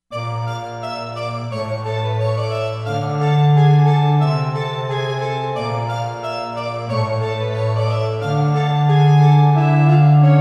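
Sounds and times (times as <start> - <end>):
ethnic strings on a synthesizer: 0.2 - 10.3.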